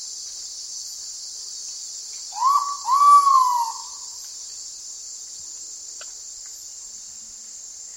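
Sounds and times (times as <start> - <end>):
high-pitched insect hum: 0.0 - 7.9
ivory-breasted pitta Pitta maxima whistling: 2.4 - 4.1.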